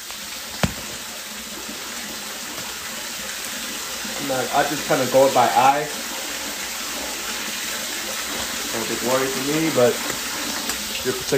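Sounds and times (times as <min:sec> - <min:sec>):
tap water pouring into a filling bathtub: 0:00.0 - 0:11.3
speech: 0:04.3 - 0:06.0, 0:09.0 - 0:10.2, 0:11.0 - 0:11.3.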